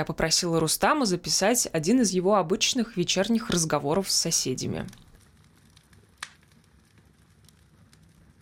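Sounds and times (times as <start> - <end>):
speech: 0.0 - 5.1
evening campfire crackling: 3.0 - 8.4.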